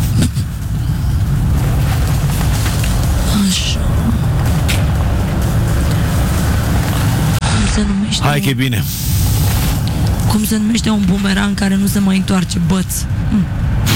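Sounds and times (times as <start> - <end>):
semi-truck tractor unit deep diesel rumble: 0.0 - 13.9
speech: 8.2 - 9.3, 10.4 - 13.8.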